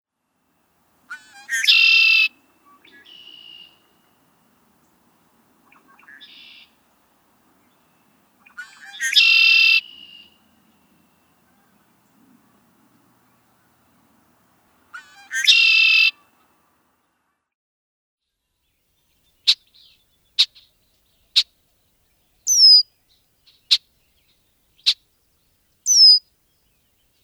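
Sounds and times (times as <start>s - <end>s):
Red-winged Blackbird calling: 1.1s - 4.9s, 5.6s - 6.8s, 7.5s - 14.0s, 14.9s - 16.2s, 22.5s - 22.8s, 25.9s - 26.2s.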